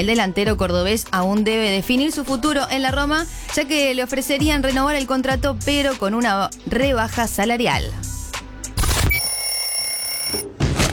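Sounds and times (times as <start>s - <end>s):
speech: 0.0s - 8.2s
alarm clock ringing: 9.2s - 10.5s.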